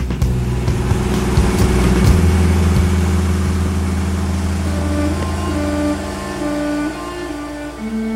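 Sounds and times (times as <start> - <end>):
car engine revving: 0.0 - 8.1.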